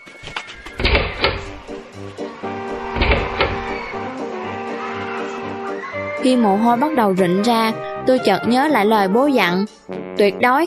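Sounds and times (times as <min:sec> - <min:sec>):
heavy doors slamming shut: 0:00.7 - 0:04.3
speech: 0:06.2 - 0:10.6.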